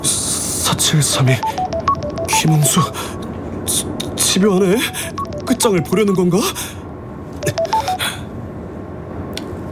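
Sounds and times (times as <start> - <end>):
speech: 0.8 - 1.6, 2.4 - 6.8
phone ringing for an incoming call with electronic beeping notes: 1.4 - 3.1, 4.7 - 6.4, 7.4 - 8.2.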